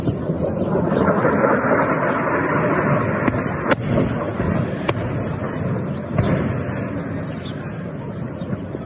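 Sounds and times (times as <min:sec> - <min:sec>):
explosions from massive airstrikes across a country: 0:00.0 - 0:08.8
sharp cracks: 0:03.2 - 0:07.0.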